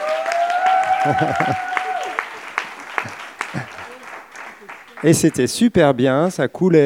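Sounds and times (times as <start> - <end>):
audience applauding: 0.0 - 5.4
laughter: 0.8 - 5.4
speech: 1.0 - 1.8, 5.0 - 6.8.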